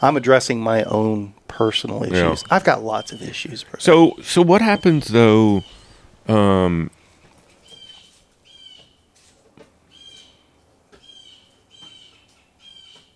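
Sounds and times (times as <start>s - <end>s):
speech: 0.0s - 7.0s
birds chirping: 0.0s - 9.1s, 9.8s - 13.1s
soft noise: 0.0s - 13.1s.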